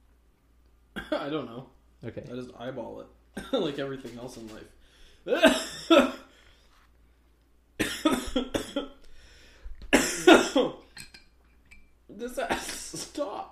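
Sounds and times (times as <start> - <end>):
harsh chesty coughing from allergies: 1.0 - 1.4, 3.4 - 3.7, 5.3 - 6.4, 7.8 - 9.0, 9.9 - 10.9, 12.4 - 13.0
speech: 1.0 - 6.2.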